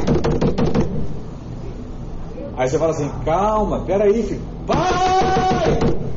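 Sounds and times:
knocking on a locked door: 0.0 - 1.0, 4.7 - 6.1
speech: 2.6 - 5.1.

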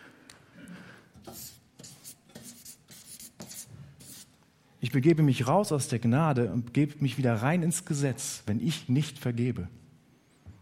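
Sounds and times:
scratchy writing strokes on a board: 1.2 - 4.3
speech: 4.8 - 9.8.

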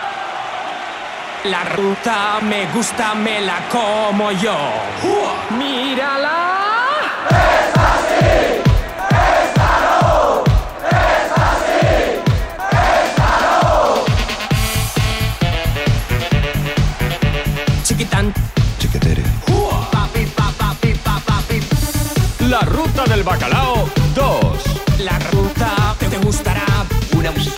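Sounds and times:
crowd chanting and shouting over the beat: 0.0 - 27.5
speech: 1.4 - 6.6
steady fast techno kick drum: 7.3 - 27.5.

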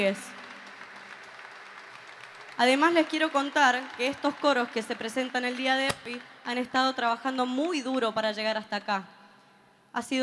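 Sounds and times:
speech: 0.0 - 0.4, 2.6 - 9.1, 10.0 - 10.2
audience clapping: 0.0 - 5.5.

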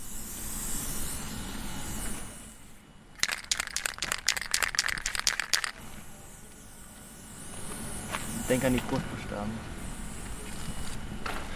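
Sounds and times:
outdoor noise: 0.0 - 11.5
spray can spraying lettering onto fabric banner: 3.2 - 5.8
speech: 8.5 - 9.7.

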